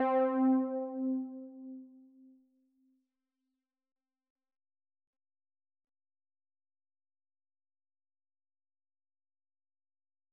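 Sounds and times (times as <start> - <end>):
synth lead: 0.0 - 1.8.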